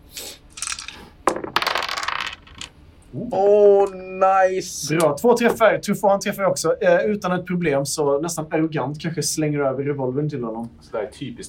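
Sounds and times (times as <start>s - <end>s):
dice rolling across a tabletop in a role-playing game: 0.5s - 2.8s
speech: 3.1s - 11.4s.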